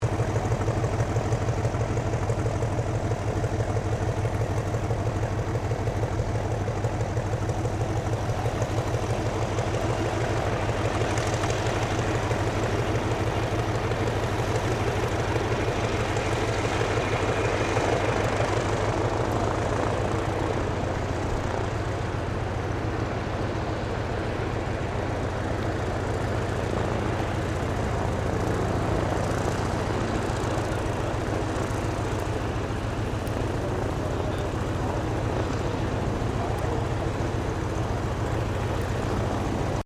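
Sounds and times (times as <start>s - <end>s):
1934 Avro 643 Mk IA Cadet biplane idling: 0.0s - 39.8s.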